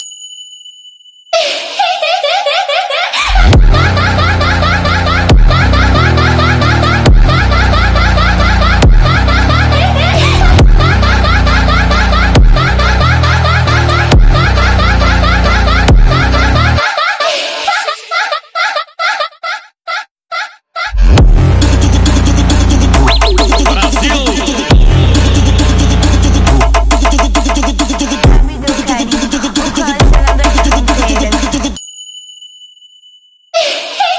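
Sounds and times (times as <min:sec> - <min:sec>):
evil laugh: 0:01.4 - 0:21.1, 0:22.9 - 0:26.0, 0:33.6 - 0:34.1
phonk music: 0:03.4 - 0:16.8, 0:20.9 - 0:31.8.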